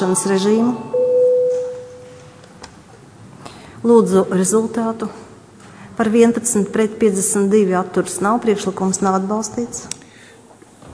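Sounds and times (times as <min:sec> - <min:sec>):
speech: 0:00.0 - 0:01.0, 0:03.8 - 0:05.2, 0:06.0 - 0:10.0
parliamentary chamber bell calling members to a vote: 0:00.0 - 0:02.4.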